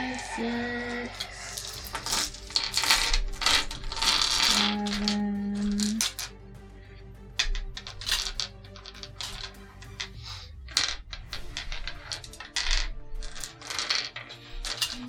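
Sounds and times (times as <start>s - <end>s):
many small eight-sided dice clattering onto a surface: 0.1s - 6.4s, 7.4s - 15.0s.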